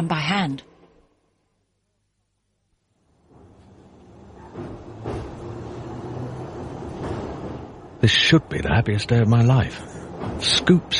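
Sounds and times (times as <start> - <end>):
speech: 0.0 - 0.7, 8.0 - 10.9
moving commuter train carriage rumble on the Baker Street to Rickmansworth line: 2.8 - 10.9
clunks and rattles as the train car jolts along the track: 3.1 - 10.9.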